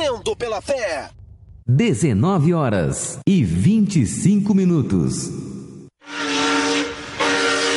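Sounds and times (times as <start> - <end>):
speech: 0.1 - 6.3
steam train whistle blast: 6.0 - 7.7.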